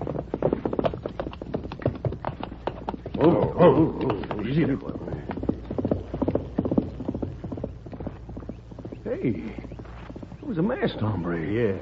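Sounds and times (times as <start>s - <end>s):
dull outdoor rumble: 0.0s - 11.7s
galloping horse hoofbeats: 0.0s - 11.7s
speech: 3.2s - 5.3s, 9.2s - 9.7s, 10.5s - 11.7s.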